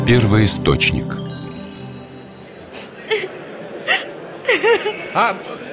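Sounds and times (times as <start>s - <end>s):
speech: 0.1s - 1.2s, 5.2s - 5.6s
woman crying with short hiccuping sobs: 2.7s - 5.0s
laughter: 2.7s - 5.7s.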